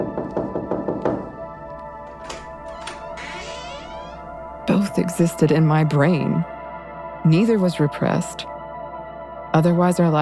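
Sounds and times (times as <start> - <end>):
firm knocks on a door: 0.0 - 1.4
speech: 4.7 - 6.6, 7.2 - 8.6, 9.5 - 10.2.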